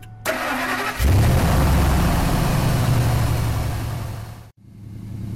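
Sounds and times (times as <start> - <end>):
truck engine idling with a misfire: 0.2 - 4.5.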